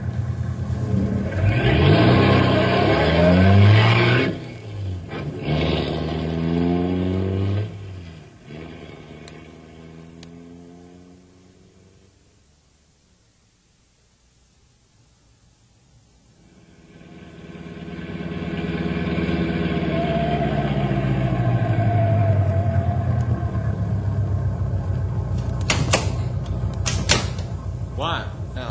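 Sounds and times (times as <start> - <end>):
vehicle engine roaring during a chase along a bad road: 0.0 - 12.6, 16.3 - 28.7
sharp knocks: 25.6 - 27.6.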